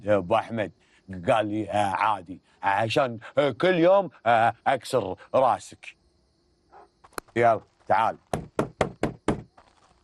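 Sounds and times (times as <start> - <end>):
speech: 0.0 - 6.0, 7.4 - 8.6
knocking on a door: 8.3 - 9.5.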